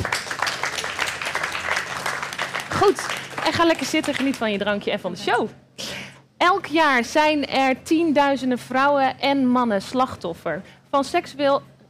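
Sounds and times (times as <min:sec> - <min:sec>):
audience applause: 0:00.0 - 0:04.3
speech: 0:02.9 - 0:05.6, 0:06.4 - 0:11.7.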